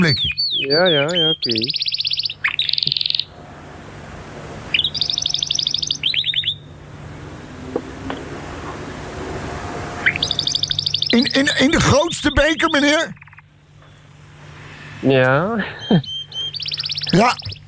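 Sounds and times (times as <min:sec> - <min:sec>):
speech: 0:00.0 - 0:01.9, 0:11.1 - 0:13.2, 0:15.0 - 0:16.1, 0:17.1 - 0:17.5
several pet canaries chirping: 0:00.0 - 0:03.3, 0:04.7 - 0:06.8, 0:10.0 - 0:14.1, 0:15.1 - 0:17.6
low electrical hum: 0:00.0 - 0:17.6.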